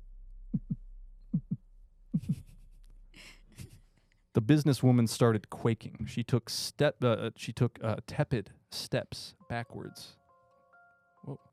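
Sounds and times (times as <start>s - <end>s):
low heartbeat thumping: 0.5s - 1.6s, 2.2s - 2.5s
speech: 4.4s - 10.2s, 11.2s - 11.5s.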